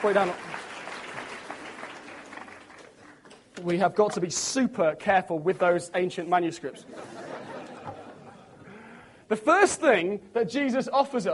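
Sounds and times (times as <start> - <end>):
speech: 0.0 - 0.5, 3.6 - 7.2, 9.3 - 11.3
congregation applauding at a church service: 0.0 - 3.4
laughter: 6.7 - 8.8.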